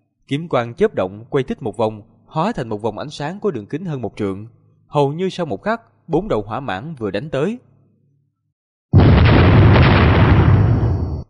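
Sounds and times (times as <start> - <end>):
speech: 0.3 - 7.7
series of loud explosions: 9.0 - 11.2.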